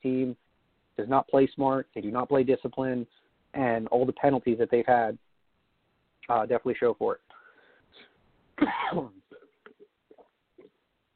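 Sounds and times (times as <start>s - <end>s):
speech: 1.1s - 5.2s, 6.2s - 7.3s, 7.9s - 9.2s
short quieter coughs and throat noises: 8.0s - 9.9s
loud harsh throat clearing: 8.0s - 10.8s.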